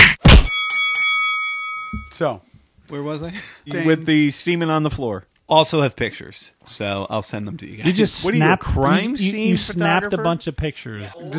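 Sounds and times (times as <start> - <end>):
bell struck hard ringing with a bright sustained metallic tone: 0.5 - 2.2
speech: 2.2 - 11.3.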